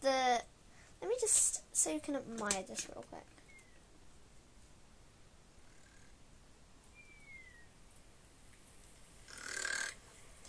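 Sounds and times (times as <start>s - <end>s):
speech: 0.0s - 0.2s, 1.2s - 3.4s
quiet hissy background: 0.0s - 10.4s
faint thin whistling tone: 6.9s - 7.8s
raspy cartoon-style video game character snore sound effect: 9.3s - 10.0s.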